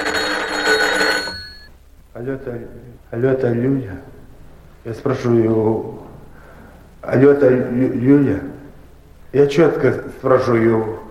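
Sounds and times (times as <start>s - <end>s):
telephone bell ringing in a family home: 0.0s - 1.7s
speech: 2.2s - 4.2s, 4.8s - 6.1s, 7.0s - 8.5s, 9.3s - 11.0s.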